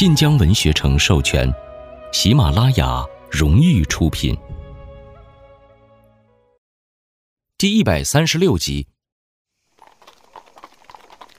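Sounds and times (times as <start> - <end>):
speech: 0.0 - 4.5, 7.6 - 8.9
hooves of a horse pulling a carriage clopping: 9.7 - 11.3.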